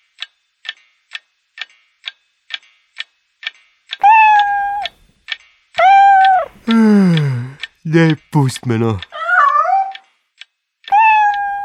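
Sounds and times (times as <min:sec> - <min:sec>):
cat meowing: 0:04.0 - 0:04.9, 0:05.8 - 0:06.6, 0:09.0 - 0:10.0, 0:10.9 - 0:11.6
speech: 0:07.9 - 0:09.1.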